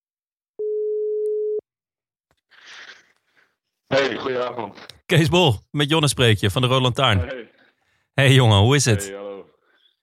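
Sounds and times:
steady telephone ringback tone: 0.6 - 1.6
speech: 3.9 - 7.6, 8.2 - 9.3.

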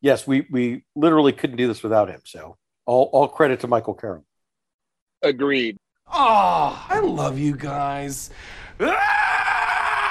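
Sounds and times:
speech: 0.0 - 4.3, 5.2 - 9.3
loud cathartic scream: 6.1 - 6.9, 8.8 - 10.0.

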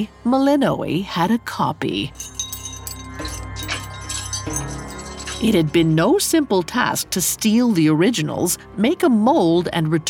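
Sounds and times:
speech: 0.0 - 2.4, 5.4 - 10.0
metal keys jangling: 2.1 - 6.0.

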